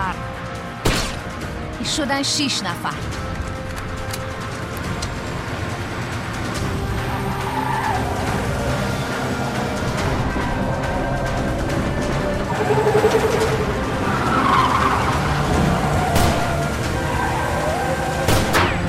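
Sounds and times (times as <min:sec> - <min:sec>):
engines of three approaching cars roaring: 0:00.0 - 0:18.8
road noise: 0:00.0 - 0:18.8
speech: 0:01.8 - 0:03.3
squealing tire skids: 0:05.5 - 0:18.8.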